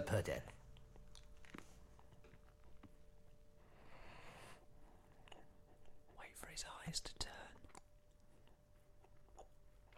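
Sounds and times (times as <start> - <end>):
speech: 0.1 - 0.6, 6.6 - 7.2
chewing a jelly bean: 0.4 - 3.4, 5.0 - 6.1, 7.5 - 9.9.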